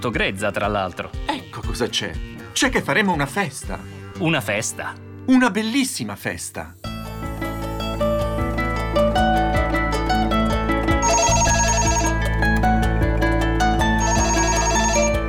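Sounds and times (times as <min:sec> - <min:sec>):
speech: 0:00.0 - 0:06.8
steady full musical background: 0:00.0 - 0:15.2
landline telephone bell ringing: 0:11.0 - 0:12.4, 0:13.8 - 0:15.2.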